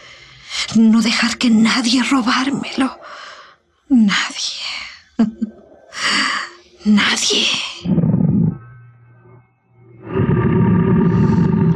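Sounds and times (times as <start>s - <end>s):
speech: 0.8s - 3.3s, 3.9s - 5.4s, 6.9s - 8.0s
tiger roaring: 7.8s - 8.6s, 10.0s - 11.7s.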